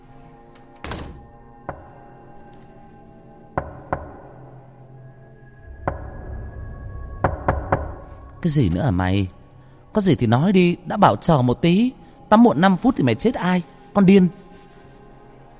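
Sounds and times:
knocking on a bathroom door: 3.6s - 4.2s, 7.2s - 8.1s
speech: 8.4s - 9.4s, 10.0s - 14.4s.

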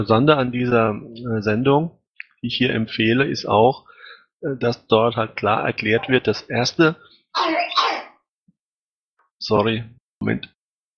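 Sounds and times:
speech: 0.0s - 7.8s, 9.4s - 10.6s
small child coughing: 7.4s - 8.2s.

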